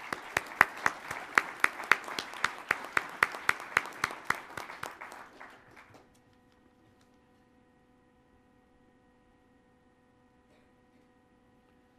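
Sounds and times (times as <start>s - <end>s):
conference audience applauding: 0.0s - 6.2s
sharp evenly spaced claps: 0.0s - 6.2s.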